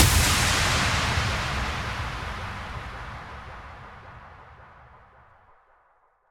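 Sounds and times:
slap move impact: 0.0 - 4.0.

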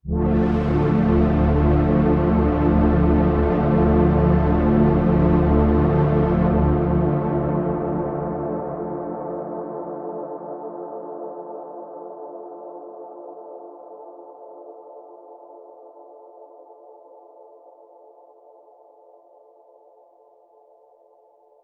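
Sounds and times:
synth pad with filter and chorus: 0.0 - 16.0.

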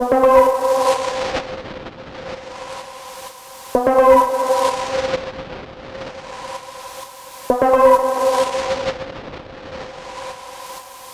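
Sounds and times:
synth pluck 128: 0.0 - 1.0, 3.8 - 5.0, 7.5 - 8.7.

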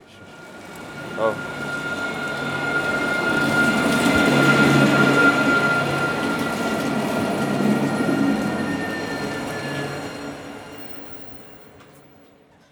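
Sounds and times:
foley train passing by: 0.0 - 12.7.

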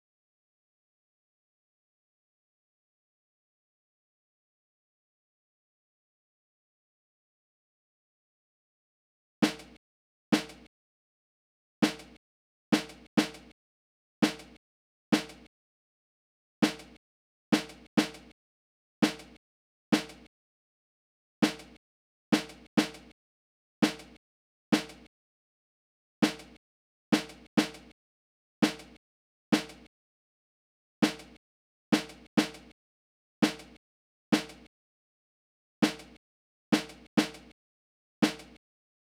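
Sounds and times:
deep real snare drum: 9.4 - 9.8, 10.4 - 10.7, 11.8 - 12.2, 12.8 - 13.5, 14.2 - 14.6, 15.2 - 15.5, 16.6 - 17.0, 17.6 - 18.3, 19.0 - 19.4, 20.0 - 20.3, 21.4 - 21.8, 22.4 - 23.1, 23.8 - 24.2, 24.8 - 25.1, 26.2 - 26.6, 27.2 - 27.9, 28.6 - 29.0, 29.6 - 29.9, 31.0 - 31.4, 32.0 - 32.7, 33.4 - 33.8, 34.4 - 34.6, 35.8 - 36.2, 36.8 - 37.5, 38.2 - 38.6.

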